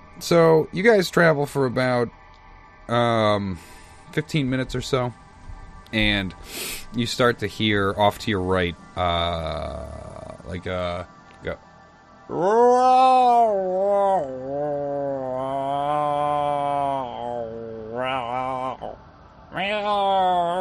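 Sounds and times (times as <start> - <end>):
speech: 0.2 - 2.2, 2.9 - 5.2, 5.9 - 11.7, 12.3 - 16.6
person imitating a cat with yowls and meows during a tabletop role-playing game: 12.3 - 20.5.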